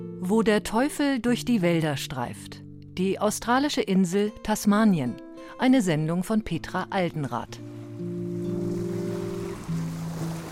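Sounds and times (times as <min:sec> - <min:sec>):
speech: 0:00.0 - 0:07.7
water lapping against yachts and steamers moored in a harbour in Tasmania: 0:07.6 - 0:10.5.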